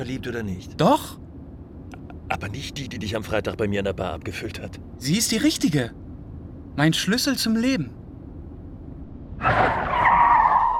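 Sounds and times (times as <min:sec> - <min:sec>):
speech: 0:00.0 - 0:01.2, 0:02.3 - 0:06.0, 0:06.8 - 0:08.0, 0:09.4 - 0:09.6
old Austin car tires skidding while braking hard: 0:09.3 - 0:10.7.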